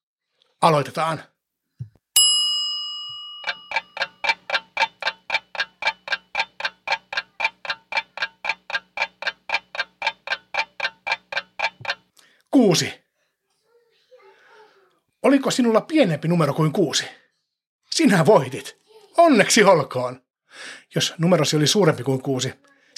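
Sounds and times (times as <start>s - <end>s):
speech: 0.6s - 1.3s, 12.7s - 13.0s, 15.4s - 17.2s, 18.0s - 22.9s
bright bell-like ding: 2.2s - 4.4s
stopwatch ticking: 3.1s - 12.2s.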